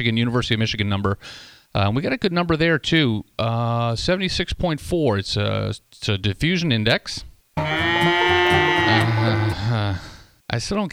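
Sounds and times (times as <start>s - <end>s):
speech: 0.0s - 8.2s, 8.9s - 10.9s
cow mooing: 7.6s - 10.0s.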